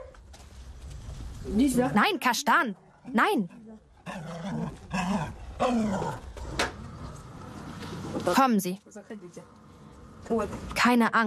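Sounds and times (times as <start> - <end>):
speech: 1.4 - 6.2, 8.2 - 9.6, 10.2 - 11.2
suspicious tomcat growling: 4.0 - 7.1.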